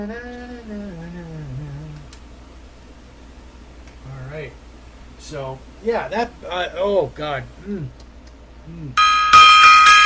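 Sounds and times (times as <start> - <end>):
speech: 0.0 - 0.8, 4.4 - 4.6, 5.2 - 8.0, 8.7 - 9.2
gong being struck: 9.0 - 10.0.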